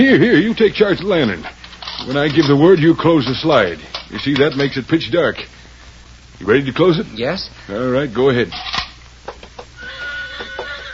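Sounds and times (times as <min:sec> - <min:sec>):
speech: 0:00.0 - 0:05.6, 0:06.4 - 0:08.8
horse whinnying: 0:09.8 - 0:10.9.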